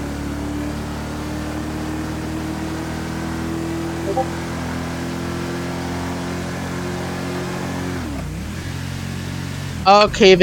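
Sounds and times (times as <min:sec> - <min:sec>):
video game car engine revving while driving: 0:00.0 - 0:04.0, 0:04.6 - 0:09.8
speech: 0:04.2 - 0:04.6, 0:09.8 - 0:10.4.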